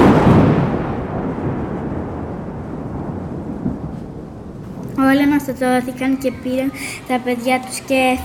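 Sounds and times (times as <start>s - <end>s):
thunder from lightning striking the town hall: 0.0s - 6.1s
speech: 5.1s - 8.2s.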